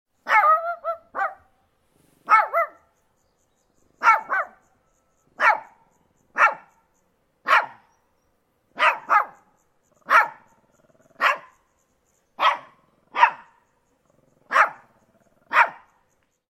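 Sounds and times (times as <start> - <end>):
Shih Tzu giving high tonal yappy barks: 0.2 - 1.5, 2.3 - 2.9, 4.0 - 4.7, 5.4 - 8.0, 8.7 - 11.6, 12.4 - 16.0.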